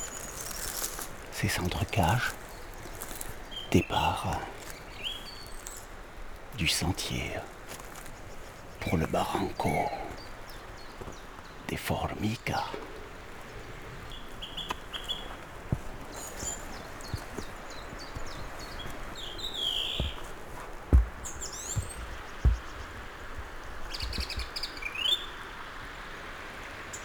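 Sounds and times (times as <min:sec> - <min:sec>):
birds singing and chirping in a sunny wild pine forest: 0:00.0 - 0:25.4
speech: 0:01.4 - 0:02.4, 0:03.7 - 0:04.6, 0:06.6 - 0:07.6, 0:08.8 - 0:10.0, 0:11.7 - 0:13.0
brief low thumps: 0:20.0 - 0:24.5.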